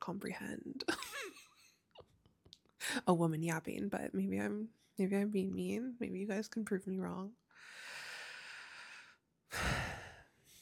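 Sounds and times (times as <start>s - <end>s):
speech: 0.0s - 1.4s, 2.9s - 7.8s
deep breathing: 7.6s - 10.6s.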